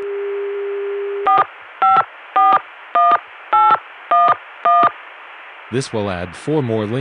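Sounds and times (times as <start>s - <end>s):
faint telephone line hiss: 0.0s - 6.9s
touch-tone beeps dialing a phone number: 1.3s - 4.9s
speech: 5.7s - 6.9s.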